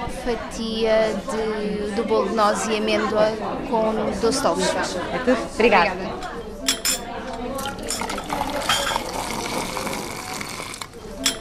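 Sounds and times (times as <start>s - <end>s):
voices at a tea service: 0.0s - 11.4s
speech: 0.2s - 6.4s
porcelain teacup set down on a table: 6.7s - 9.8s, 11.2s - 11.4s.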